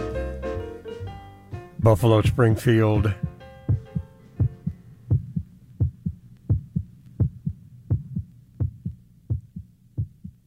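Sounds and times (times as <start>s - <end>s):
faint musical tones at end of song: 0.0s - 10.4s
speech: 1.8s - 3.3s
heartbeat thumping in low lub-dub pairs: 3.1s - 10.4s.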